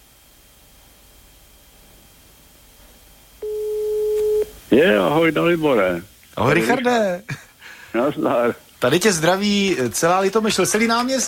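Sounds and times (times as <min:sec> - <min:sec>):
telephone line tone from an unanswered call on live radio: 0:03.4 - 0:04.6
speech: 0:04.7 - 0:11.2.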